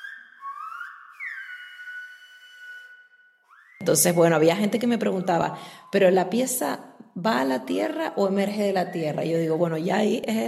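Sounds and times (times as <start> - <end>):
person whistling a sliding sustained tone: 0.0 - 3.9
speech: 3.8 - 10.4.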